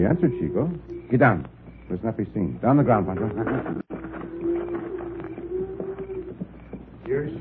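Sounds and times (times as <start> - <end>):
speech: 0.0 - 4.0
many hoofbeats of a herd of cattle on the move: 1.8 - 7.4.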